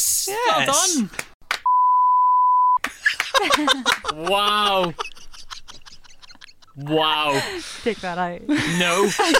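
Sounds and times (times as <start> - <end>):
speech: 0.0 - 1.3, 3.6 - 5.1, 6.8 - 9.3
loud steady censor bleep tone: 1.7 - 2.8
laughter: 2.8 - 9.3.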